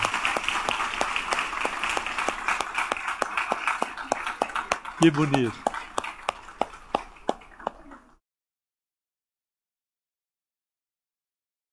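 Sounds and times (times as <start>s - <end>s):
round of applause from a group: 0.0s - 8.2s
speech: 5.0s - 5.6s.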